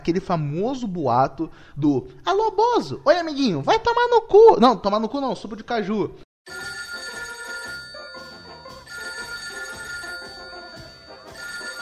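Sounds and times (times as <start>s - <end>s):
speech: 0.0s - 6.7s
telephone ringing with an incoming call: 6.5s - 11.8s.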